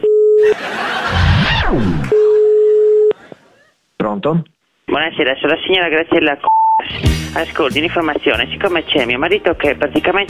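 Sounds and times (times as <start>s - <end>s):
laughter: 0.4s - 2.9s
speech: 1.7s - 2.2s, 4.1s - 10.2s
ringing tone of an outgoing telephone call: 2.4s - 3.1s.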